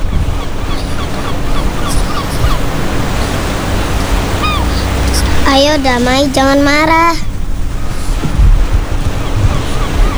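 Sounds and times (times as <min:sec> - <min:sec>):
gusts of wind buffeting the microphone: 0:00.0 - 0:10.1
ocean waves breaking on a beach: 0:00.0 - 0:10.1
speech: 0:05.5 - 0:07.3.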